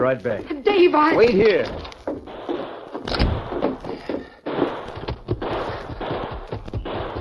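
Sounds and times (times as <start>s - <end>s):
speech: 0.0s - 1.9s
rapid bursts of gunfire on a street: 2.2s - 7.1s.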